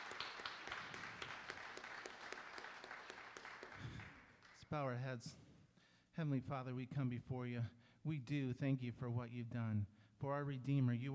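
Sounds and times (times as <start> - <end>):
crowd applauding in a room: 0.0 - 4.6
speech: 4.7 - 5.4, 6.2 - 11.1.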